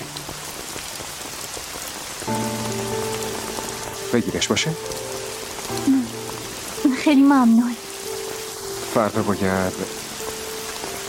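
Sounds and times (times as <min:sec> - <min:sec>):
steady dense rain hissing and pattering: 0:00.0 - 0:11.0
speech: 0:04.1 - 0:06.0, 0:07.1 - 0:07.7, 0:09.0 - 0:10.0.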